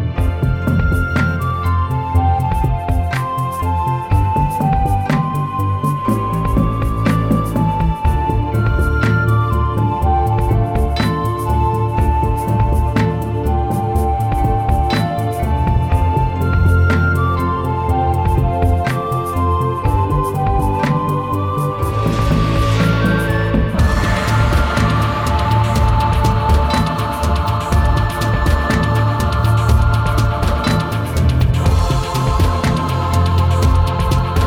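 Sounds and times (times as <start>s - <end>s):
rhythmic music: 0.2s - 34.4s.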